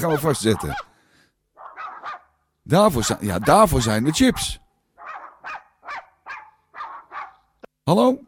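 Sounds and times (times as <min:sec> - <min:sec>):
dog barking: 0:00.0 - 0:00.9, 0:01.6 - 0:02.4, 0:03.3 - 0:07.5
speech: 0:00.0 - 0:00.9, 0:02.7 - 0:04.6, 0:07.9 - 0:08.2.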